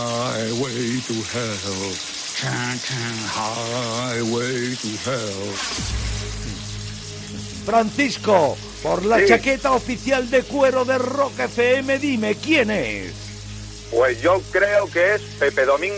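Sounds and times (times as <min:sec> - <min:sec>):
speech: 0:00.0 - 0:06.3, 0:07.7 - 0:13.2, 0:13.9 - 0:15.9
shower water running: 0:00.0 - 0:15.9.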